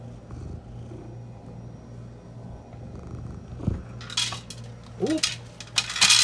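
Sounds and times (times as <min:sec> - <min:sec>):
automatic cat feeder humming: 0:00.0 - 0:06.2
dry kibble clattering into a bowl from automatic cat feeder: 0:04.0 - 0:06.2.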